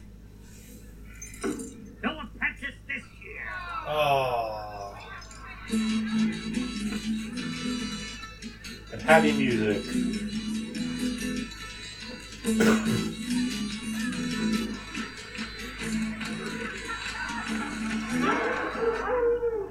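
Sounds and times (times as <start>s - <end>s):
steady hum: 0.0s - 19.7s
speech: 9.1s - 10.2s, 12.5s - 13.2s
laughter: 15.5s - 19.7s
dogs howling: 16.4s - 19.7s.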